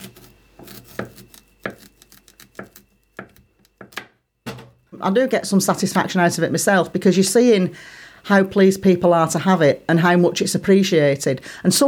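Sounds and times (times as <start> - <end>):
knife chopping an onion: 0.0 - 4.8
speech: 5.0 - 11.8.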